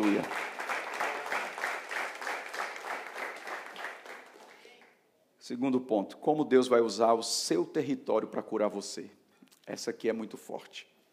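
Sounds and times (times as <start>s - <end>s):
large crowd applauding: 0.0s - 4.9s
speech: 0.1s - 0.4s, 5.5s - 10.9s.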